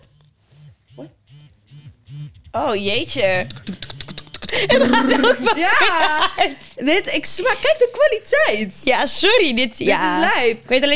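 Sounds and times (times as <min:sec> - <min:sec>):
vibrating device buzzing through its different settings: 0:00.0 - 0:06.4
speech: 0:01.0 - 0:01.2, 0:02.6 - 0:03.8, 0:04.5 - 0:10.9
laughter: 0:03.1 - 0:06.9.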